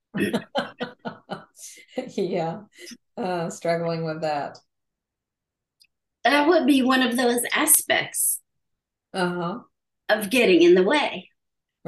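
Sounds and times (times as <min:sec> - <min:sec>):
speech: 0:00.1 - 0:00.7, 0:01.6 - 0:04.7, 0:06.2 - 0:08.4, 0:09.1 - 0:11.8
short harsh coughs: 0:00.2 - 0:00.6
laughter: 0:00.2 - 0:02.1.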